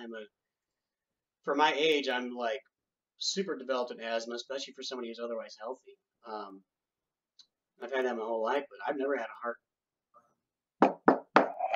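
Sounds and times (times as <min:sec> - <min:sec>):
speech: 0:00.0 - 0:00.4, 0:01.4 - 0:06.7, 0:07.8 - 0:09.6
solid hollow knocks on wood: 0:10.8 - 0:11.6.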